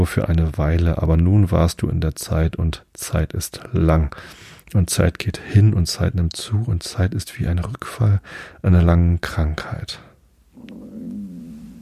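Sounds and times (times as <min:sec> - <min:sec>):
speech: 0:00.0 - 0:10.1
stomach growling: 0:10.6 - 0:11.8.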